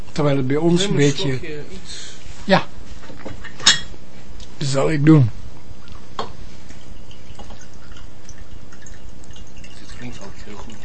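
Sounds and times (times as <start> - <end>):
speech: 0.2 - 2.7, 4.6 - 5.4
tea pouring into a cup: 5.9 - 10.8.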